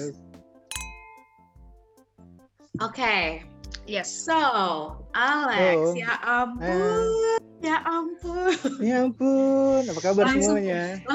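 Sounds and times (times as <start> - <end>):
speech: 0.0 - 0.3, 2.8 - 11.1
glasses clinking in a toast with evening coffee: 0.7 - 1.6.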